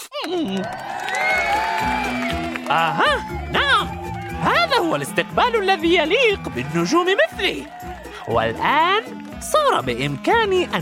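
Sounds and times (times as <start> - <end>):
crowd cheering: 0.0 - 10.7
speech: 0.2 - 0.9, 1.8 - 3.5, 4.8 - 10.7
whoops and shouts: 0.2 - 5.4.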